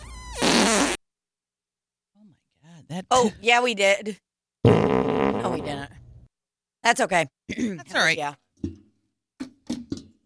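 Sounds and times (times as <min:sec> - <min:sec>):
single loud raspy sputtering fart: 0:00.0 - 0:01.0, 0:04.6 - 0:05.8
speech: 0:02.9 - 0:05.0, 0:06.8 - 0:08.8.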